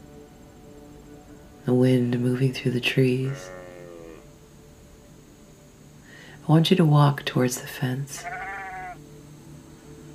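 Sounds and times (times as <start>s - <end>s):
steady quiet outdoor hush: 0.0s - 10.1s
speech: 1.7s - 3.6s, 6.5s - 8.4s
sheep bleating: 3.2s - 4.3s, 8.2s - 9.0s.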